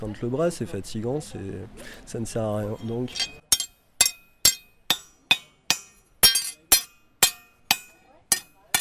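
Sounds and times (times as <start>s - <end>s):
speech: 0.0s - 3.4s
blacksmith's forging hammer tapping on the anvil: 3.1s - 8.8s.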